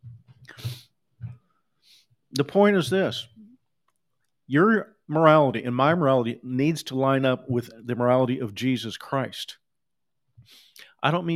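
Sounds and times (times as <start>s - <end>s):
human sneeze: 0.5s - 0.9s
speech: 2.3s - 3.3s, 4.5s - 9.6s, 10.5s - 11.3s.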